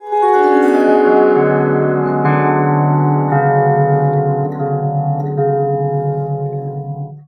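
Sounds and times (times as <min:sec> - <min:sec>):
surmandal stringed instrument playing: 0:00.0 - 0:07.1.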